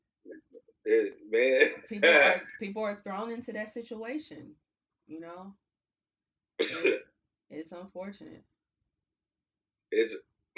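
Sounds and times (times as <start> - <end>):
harsh voiced coughs: 0.3 - 2.6, 6.6 - 7.1, 9.9 - 10.5
speech: 0.9 - 5.6, 6.6 - 8.5, 9.9 - 10.5.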